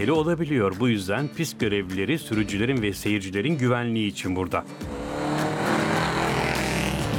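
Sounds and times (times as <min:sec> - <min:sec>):
speech: 0:00.0 - 0:05.0
vintage Austin 7 car engine roaring while racing up a hill climb: 0:04.4 - 0:07.1.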